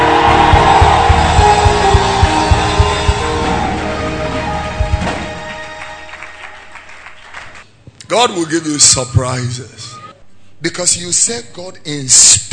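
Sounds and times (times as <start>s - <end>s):
steady thumping beat: 0.0s - 5.7s
crowd screaming and shouting at a religious service: 0.0s - 6.0s
speech: 8.2s - 10.0s, 10.6s - 12.5s.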